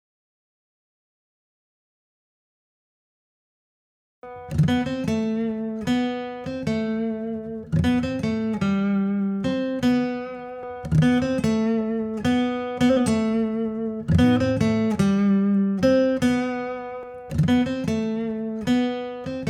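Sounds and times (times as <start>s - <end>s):
acoustic music intro: 4.2s - 19.4s.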